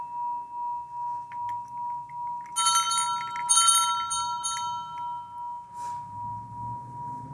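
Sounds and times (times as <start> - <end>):
meditation bell ringing: 0.0 - 7.3.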